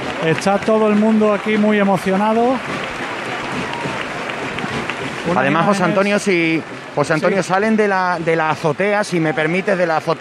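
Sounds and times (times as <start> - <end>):
faint murmuring voices: 0.0 - 7.7
large crowd applauding outdoors in a city square: 0.0 - 8.0
speech: 0.2 - 2.8, 5.2 - 10.1.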